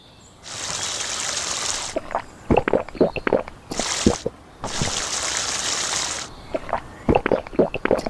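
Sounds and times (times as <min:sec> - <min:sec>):
water gushing from a tap: 0:00.4 - 0:02.0, 0:03.7 - 0:08.0
water splashing and swishing while rinsing mouth: 0:00.4 - 0:08.0.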